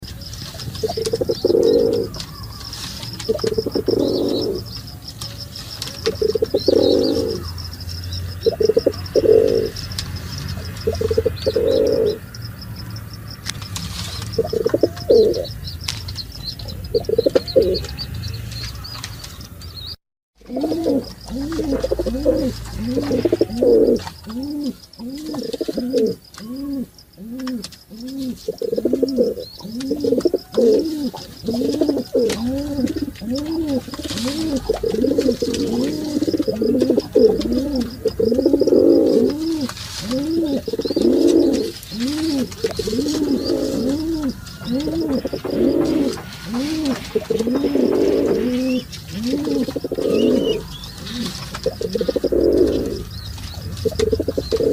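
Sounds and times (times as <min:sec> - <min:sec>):
pigeon calling: 0:00.0 - 0:54.7.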